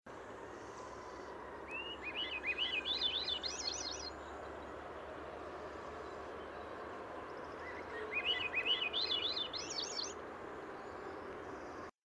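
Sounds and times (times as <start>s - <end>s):
steady background noise: 0.1s - 11.9s
bird song rising looping notes: 1.6s - 4.6s, 7.2s - 10.2s.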